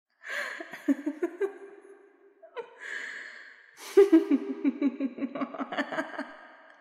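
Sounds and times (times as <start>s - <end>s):
woman laughing evilly: 0.3s - 1.6s, 3.8s - 6.6s.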